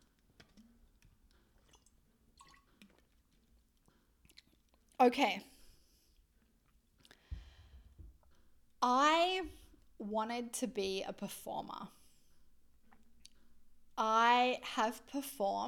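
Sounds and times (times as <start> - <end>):
person sipping water: 1.6 - 4.9
speech: 5.0 - 5.5, 8.8 - 12.0, 14.0 - 15.6
low thump: 7.3 - 8.2.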